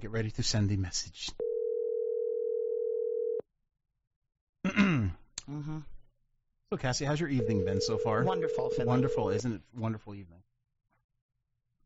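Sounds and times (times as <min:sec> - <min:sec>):
speech: 0:00.0 - 0:01.4, 0:04.7 - 0:05.9, 0:06.7 - 0:10.5
buzzing phone ringing tone: 0:01.4 - 0:03.4, 0:07.4 - 0:09.4
person sighing or murmuring: 0:04.7 - 0:05.9.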